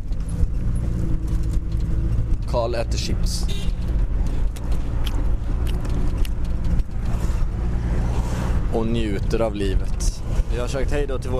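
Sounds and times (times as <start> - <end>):
high ticks inside a moving vehicle: 0.0 - 2.9, 3.6 - 7.6
moving vehicle engine rumble and road noise: 0.0 - 11.3
speech: 2.5 - 3.7, 8.7 - 11.3.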